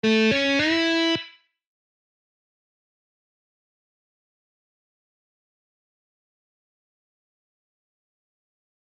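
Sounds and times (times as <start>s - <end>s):
guitar scale exercises: 0.0s - 1.4s.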